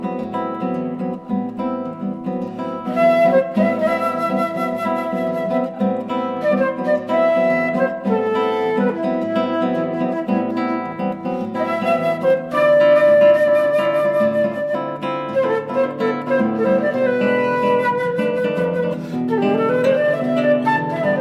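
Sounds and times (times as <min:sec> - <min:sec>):
classical guitar: 0:00.0 - 0:21.1
flute: 0:02.5 - 0:21.1.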